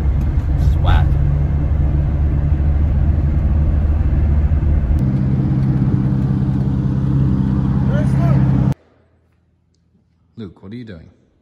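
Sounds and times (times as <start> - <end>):
truck engine rumbling: 0.0 - 8.8
speech: 10.4 - 11.2.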